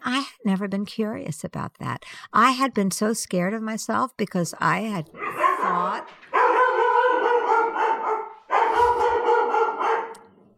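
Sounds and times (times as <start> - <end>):
speech: 0.0 - 6.3
dog barking: 5.2 - 10.3.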